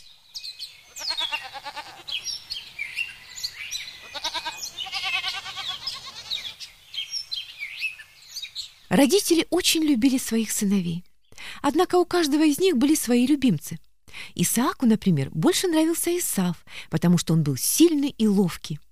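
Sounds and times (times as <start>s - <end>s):
birds chirping: 0.0s - 8.9s
sheep bleating: 0.8s - 2.4s, 3.9s - 6.6s
speech: 8.9s - 18.8s.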